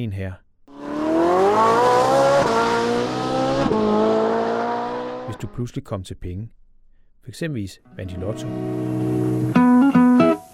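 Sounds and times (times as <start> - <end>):
speech: 0.0 - 0.4, 5.3 - 6.6, 7.2 - 10.0
big car engine revving with gear shifts: 0.7 - 5.6.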